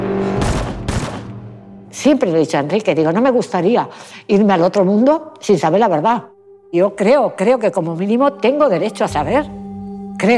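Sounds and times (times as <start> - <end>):
gunshots with rumbling echo: 0.2 - 1.4
speech: 2.0 - 9.6, 10.2 - 10.3.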